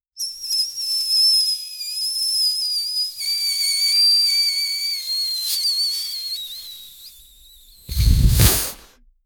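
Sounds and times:
air balloon being squeezed: 3.4s - 9.1s.

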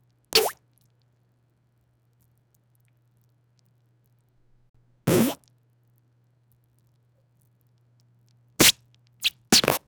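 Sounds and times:
squeaky wet rubber bursts: 0.4s - 0.6s, 8.6s - 9.8s.

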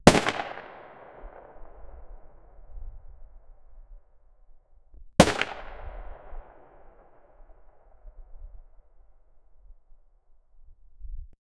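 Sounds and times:
120 mm cannon shot: 0.0s - 2.0s, 5.2s - 7.3s.

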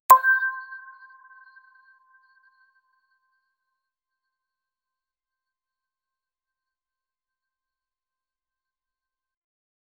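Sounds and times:
user interface button sound: 0.1s - 0.8s.

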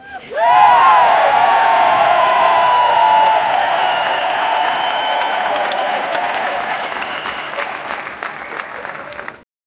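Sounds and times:
arena crowd clapping: 0.8s - 9.4s.

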